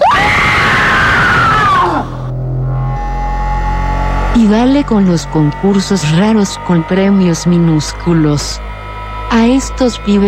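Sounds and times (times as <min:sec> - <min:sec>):
two people screaming: 0:00.0 - 0:02.3
low hum: 0:00.1 - 0:10.2
speech: 0:04.4 - 0:08.7, 0:09.3 - 0:10.2.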